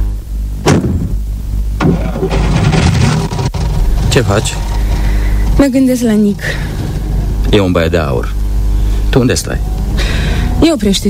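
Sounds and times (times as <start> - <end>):
car engine idling: 1.2 - 11.0
car engine cranking and starting: 1.8 - 7.5, 8.9 - 11.0
speech: 4.2 - 4.7, 5.6 - 6.7, 7.5 - 8.4, 9.2 - 11.0.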